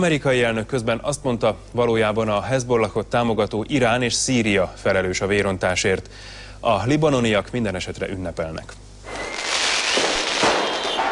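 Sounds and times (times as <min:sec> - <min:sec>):
speech: 0:00.0 - 0:08.8
fireworks crackling to celebrate the end of fighting in Beirut: 0:09.1 - 0:11.1.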